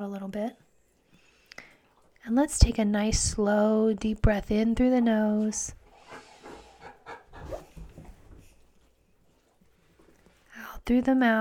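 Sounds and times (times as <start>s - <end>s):
speech: 0.0s - 0.6s, 2.2s - 5.8s, 10.9s - 11.3s
dog panting on the floor: 5.8s - 10.4s.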